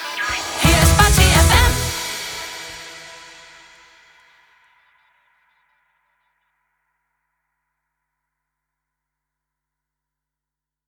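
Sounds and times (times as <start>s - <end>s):
sung jingle in E major: 0.3s - 3.8s.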